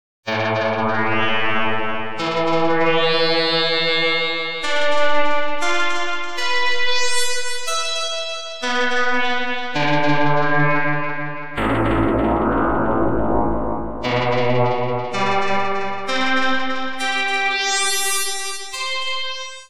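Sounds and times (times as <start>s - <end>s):
midi synth: 0.3s - 19.6s.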